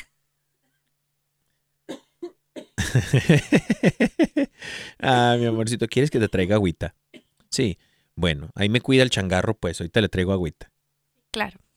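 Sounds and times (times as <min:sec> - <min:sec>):
person coughing: 0:01.9 - 0:03.0
laughter: 0:02.8 - 0:06.3
speech: 0:03.0 - 0:10.7, 0:11.3 - 0:11.6.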